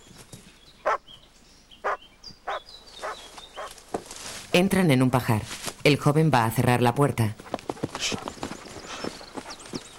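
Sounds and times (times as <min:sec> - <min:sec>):
dog barking while chasing young people running up a path: 0:02.5 - 0:03.7
low rustle: 0:02.9 - 0:04.6
speech: 0:04.6 - 0:07.4.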